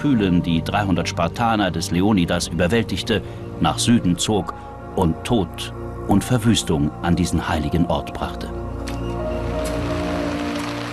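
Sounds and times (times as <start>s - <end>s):
speech: 0.0s - 8.7s
steady rain shower: 9.4s - 10.9s.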